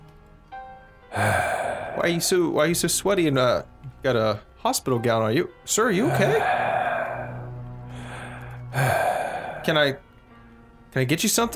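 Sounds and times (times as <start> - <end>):
heavy rasping breathing: 1.1 - 2.5, 6.0 - 10.0
speech: 1.2 - 1.4, 2.0 - 6.6, 9.6 - 10.0, 10.9 - 11.5.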